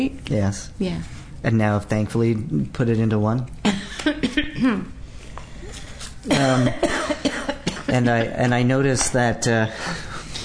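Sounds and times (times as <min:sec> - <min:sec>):
speech: 0:00.0 - 0:05.0, 0:06.2 - 0:07.2, 0:07.9 - 0:10.4
short forced coughs: 0:06.3 - 0:08.0.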